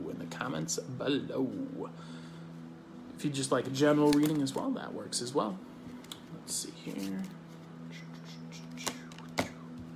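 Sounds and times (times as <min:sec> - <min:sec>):
faint steady hum: 0:00.0 - 0:09.9
speech: 0:00.4 - 0:02.2, 0:03.2 - 0:05.7, 0:06.4 - 0:07.4
deck of tarot cards being shuffled: 0:05.9 - 0:09.6
crisp slapping snaps of tarot cards: 0:08.6 - 0:09.6.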